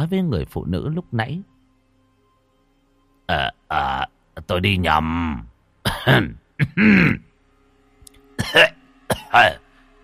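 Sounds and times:
speech: 0.0s - 1.5s, 3.3s - 7.3s, 8.5s - 9.6s
old man coughing and clearing his throat: 5.8s - 7.3s, 8.4s - 9.6s.

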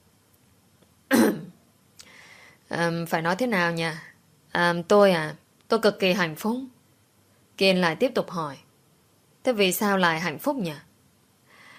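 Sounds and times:
woman clearing her throat: 1.1s - 1.6s
speech: 2.7s - 6.7s, 7.6s - 8.6s, 9.4s - 10.9s.

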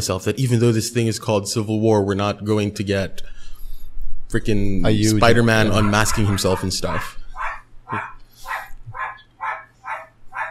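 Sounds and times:
speech: 0.0s - 3.4s, 4.3s - 7.2s, 7.9s - 8.1s
dog barking: 5.6s - 10.5s.

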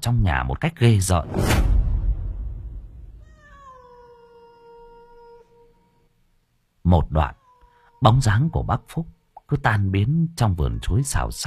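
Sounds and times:
speech: 0.0s - 1.7s, 6.9s - 7.4s, 8.0s - 11.4s
low rumbling noise: 1.2s - 3.3s
cat held in someone's arms in a banana garden meowing: 3.1s - 6.0s, 7.2s - 9.4s, 10.5s - 11.4s.

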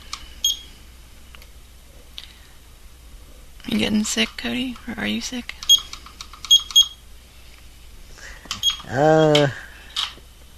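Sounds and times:
small timer beeping: 0.4s - 0.7s, 6.5s - 7.0s, 8.6s - 9.4s
speech: 3.7s - 5.6s, 8.9s - 9.6s.

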